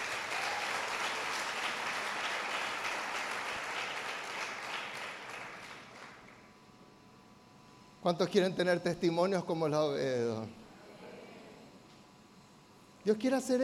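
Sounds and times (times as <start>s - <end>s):
audience applause: 0.0s - 6.4s
speech: 8.0s - 10.6s, 13.0s - 13.6s.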